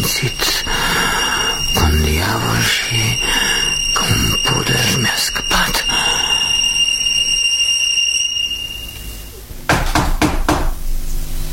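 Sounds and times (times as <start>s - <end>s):
faint steady high-pitched tone: 0.0s - 9.5s
firm knocking on a door: 9.7s - 10.8s.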